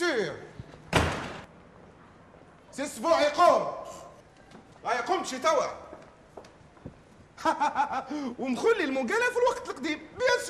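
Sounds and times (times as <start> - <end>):
door slamming shut: 0.9 - 1.5
speech: 2.8 - 3.8, 4.8 - 5.9, 7.4 - 10.4
laughter: 7.4 - 8.4.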